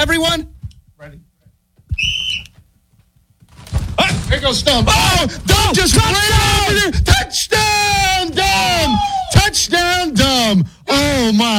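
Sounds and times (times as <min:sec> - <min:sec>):
speech: 0:00.0 - 0:01.3, 0:04.3 - 0:11.5
referee-style whistle blast in a backyard football game: 0:02.0 - 0:02.5.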